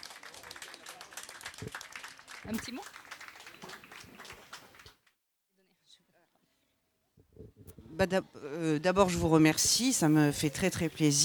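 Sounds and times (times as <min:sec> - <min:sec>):
crowd applauding a prize winner: 0:00.0 - 0:05.0
speech: 0:01.6 - 0:01.8, 0:02.4 - 0:03.0, 0:08.0 - 0:11.2.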